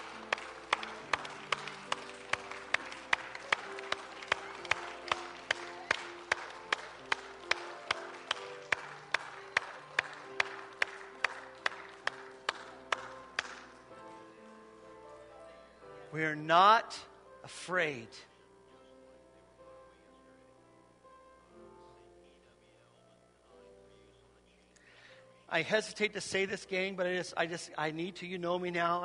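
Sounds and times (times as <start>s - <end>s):
crowd clapping together in a steady rhythm: 0.0s - 13.9s
speech: 16.2s - 18.3s, 25.6s - 29.0s.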